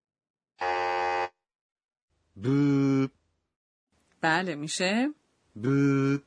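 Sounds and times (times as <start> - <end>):
quiz wrong-answer electronic buzzer: 0.6 - 1.4
speech: 2.4 - 3.2, 4.2 - 6.2.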